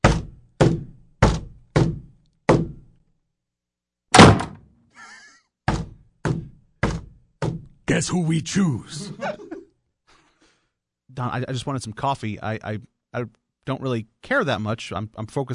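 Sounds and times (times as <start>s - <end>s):
knocks: 0.0s - 2.8s, 4.2s - 4.6s, 5.7s - 7.7s
office door closing with dull wooden thuds: 0.0s - 2.8s, 4.1s - 4.6s, 5.7s - 7.7s
office door slamming: 4.1s - 4.6s
laughter: 5.0s - 5.4s, 8.9s - 9.8s
speech: 7.9s - 9.5s, 11.2s - 15.5s.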